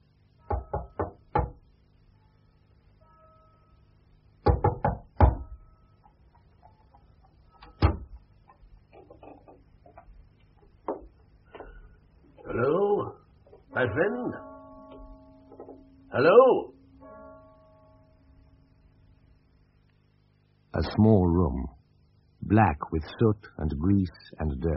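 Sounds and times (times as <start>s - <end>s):
knocking on a wooden door: 0.5s - 1.6s, 4.4s - 5.5s
speech: 13.8s - 14.5s, 16.2s - 16.7s, 20.8s - 21.8s, 22.4s - 24.7s.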